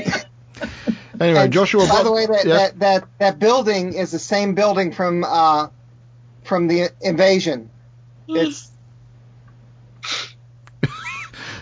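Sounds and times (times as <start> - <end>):
speech: 1.2 - 5.8, 6.4 - 7.7, 8.3 - 8.7
person sneezing: 10.0 - 10.4.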